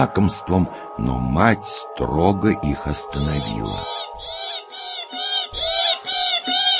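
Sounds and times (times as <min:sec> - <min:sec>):
speech: 0:00.0 - 0:04.5
Northern goshawk chicks screeching for food: 0:03.1 - 0:06.7.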